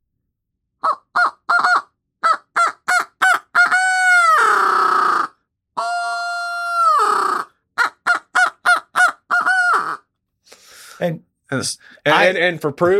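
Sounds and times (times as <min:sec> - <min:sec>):
duck call blown in hoot owl cadence: 0:00.8 - 0:10.0
speech: 0:11.0 - 0:12.9.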